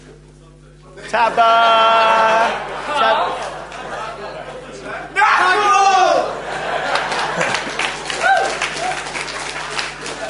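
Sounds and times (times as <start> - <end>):
laughter: 1.0 - 10.2
speech: 1.1 - 3.4
person whooping: 1.2 - 3.3, 5.2 - 6.4, 8.1 - 9.2
room full of people clapping steadily: 1.3 - 4.5, 6.2 - 10.2.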